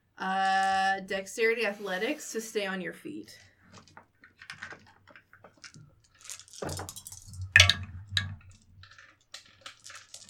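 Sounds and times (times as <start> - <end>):
speech: 0.2 - 3.5
dice rattling through a dice tower: 4.4 - 10.2.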